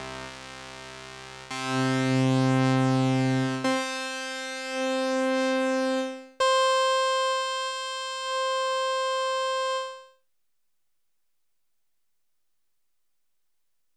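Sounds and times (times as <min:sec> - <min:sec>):
high-pass Kawai SX240 synth: 0:01.5 - 0:10.1.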